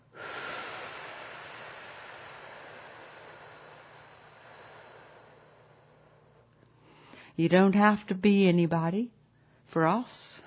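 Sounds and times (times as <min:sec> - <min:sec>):
deep drawn-out exhale: 0:00.0 - 0:07.4
speech: 0:07.4 - 0:10.3.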